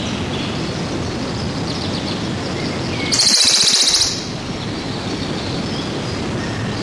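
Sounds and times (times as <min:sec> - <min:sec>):
loud noisy background: 0:00.0 - 0:06.8
Western Bonelli's warbler song trill: 0:02.9 - 0:05.0.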